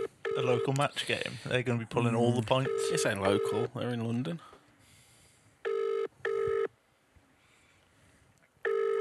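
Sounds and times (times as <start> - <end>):
speech: 0.4 - 4.5
telephone ringing tone double ring: 5.7 - 6.7, 8.7 - 8.9.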